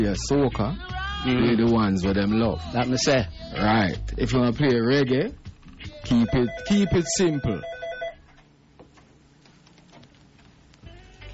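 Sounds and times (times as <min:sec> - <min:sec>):
speech: 0:00.0 - 0:05.4, 0:06.1 - 0:07.7
mobile phone rattling tick and buzz in front of studio microphone: 0:06.1 - 0:08.3.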